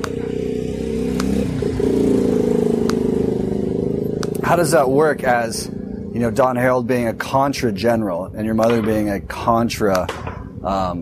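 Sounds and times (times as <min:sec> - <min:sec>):
motorcycle passing by: 0:00.0 - 0:08.7
speech: 0:04.5 - 0:11.0.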